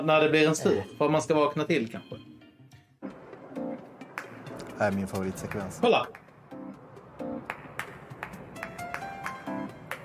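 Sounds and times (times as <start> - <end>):
speech: 0.0 - 2.2, 4.8 - 6.2
hands clapping: 4.0 - 6.4, 7.3 - 10.0.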